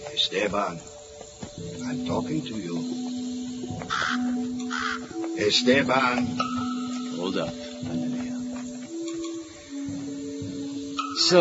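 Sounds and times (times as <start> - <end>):
steady low hum: 0.0 - 11.3
speech: 0.2 - 0.9, 1.6 - 3.0, 3.6 - 6.6, 7.2 - 8.1, 11.2 - 11.3
crow cawing in a tree: 3.6 - 6.9.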